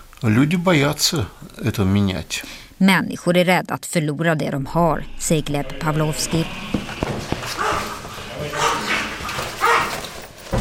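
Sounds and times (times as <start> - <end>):
speech: 0.2 - 6.7
faint murmur: 5.8 - 10.5
dog barking and whimpering: 6.6 - 10.2.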